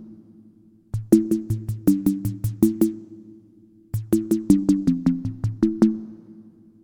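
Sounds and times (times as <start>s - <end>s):
drums on mini keyboard: 0.9s - 3.1s, 3.9s - 5.8s.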